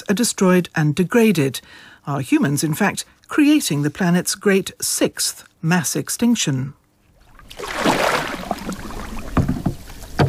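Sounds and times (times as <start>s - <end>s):
speech: 0.1s - 6.8s
whooshing splash of a fisherman casting a net on a river: 7.2s - 9.4s
water slaps and drips on a river: 7.2s - 10.2s.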